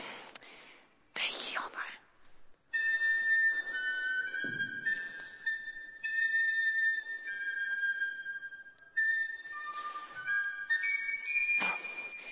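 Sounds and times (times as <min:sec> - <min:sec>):
flute playing a halting melody: 0:02.7 - 0:12.3.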